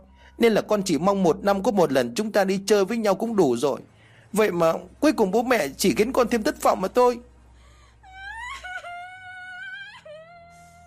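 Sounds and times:
speech: 0.4 - 7.3
girl bursting into tears, crying: 8.0 - 10.8.

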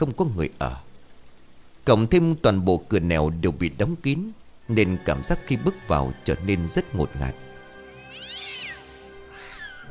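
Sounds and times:
speech: 0.0 - 0.9, 1.8 - 7.5
steady tonal background: 4.6 - 9.8
cat meowing inside a musty empty house: 8.1 - 9.8.

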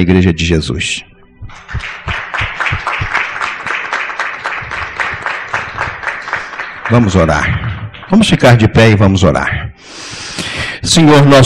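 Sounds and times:
speech: 0.0 - 3.1, 6.9 - 9.7, 10.8 - 11.4
church congregation applauding at a baptism: 1.5 - 8.7.

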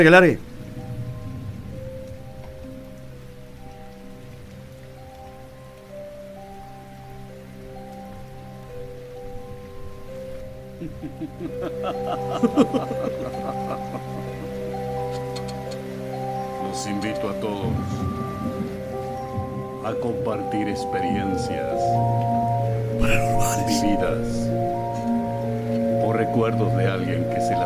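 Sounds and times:
speech: 0.0 - 0.5
steady rain patter: 0.0 - 27.6
sustained musical tones: 0.0 - 27.6
laughter: 10.8 - 14.5, 23.0 - 24.2.

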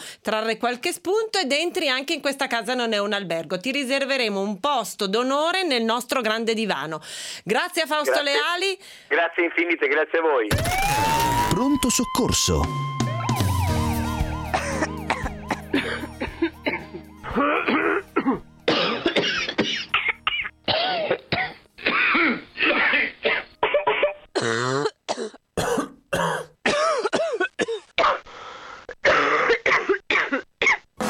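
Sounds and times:
speech: 0.2 - 13.5
coughing: 14.5 - 28.3, 29.0 - 30.9.

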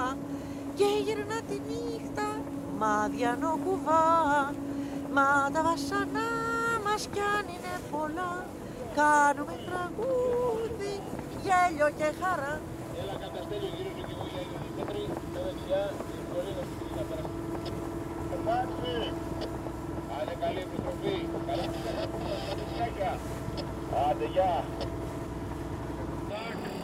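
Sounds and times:
boat engine droning on the way to an island: 0.0 - 26.8
speech: 0.8 - 14.2, 14.8 - 17.4, 18.4 - 19.6, 20.2 - 25.0.

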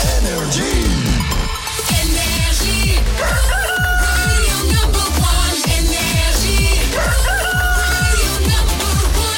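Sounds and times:
loud dense music with a steady driving beat: 0.0 - 9.3
rooster crowing: 3.2 - 4.4, 7.0 - 8.2.

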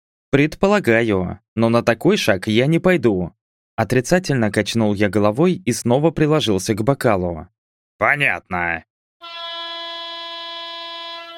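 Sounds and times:
speech: 0.3 - 9.4
horn signal marking the start of a tournament's first day: 9.2 - 11.3.

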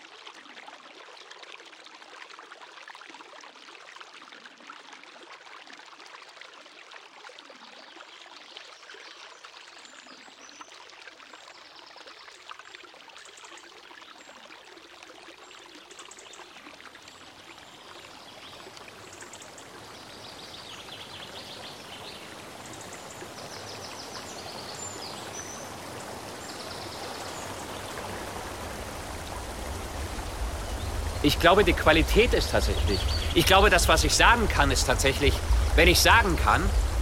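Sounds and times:
river flowing: 16.7 - 36.9
speech: 31.3 - 36.8.

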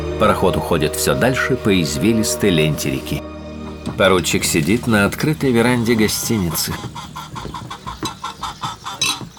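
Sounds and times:
speech: 0.2 - 3.3, 4.0 - 7.8
chickens clucking while pecking crumbs around a table on a hotel veranda: 4.0 - 9.3.

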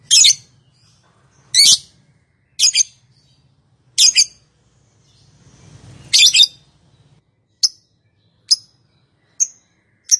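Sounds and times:
lovebird clipped high chirps: 0.0 - 1.9, 2.5 - 3.4, 4.0 - 4.4, 5.1 - 10.1.

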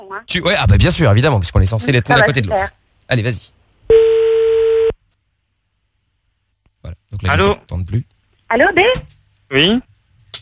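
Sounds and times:
speech: 0.1 - 3.6, 6.8 - 10.3
telephone ringback tone on the line as a call is placed: 3.9 - 5.0.

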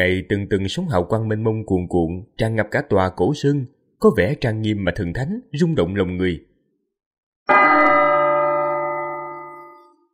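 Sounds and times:
speech: 0.0 - 6.5
golden temple bell struck and ringing: 7.5 - 10.1.

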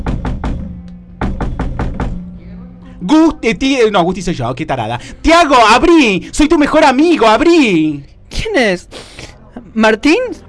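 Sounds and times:
knocking on a door: 0.0 - 0.6, 1.2 - 2.2
faint sustained musical tone: 2.2 - 5.3
speech: 3.0 - 9.2, 9.8 - 10.4.

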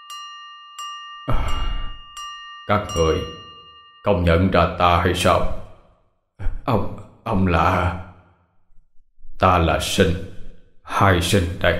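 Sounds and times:
hand bell struck hard by a ritual master: 0.0 - 4.6
speech: 1.3 - 1.8, 2.7 - 3.4, 4.0 - 5.6, 6.7 - 8.0, 9.4 - 10.3, 11.0 - 11.7.

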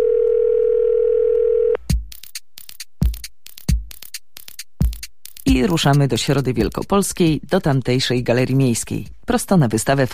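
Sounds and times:
telephone dial tone: 0.0 - 1.8
speech: 5.6 - 10.1.

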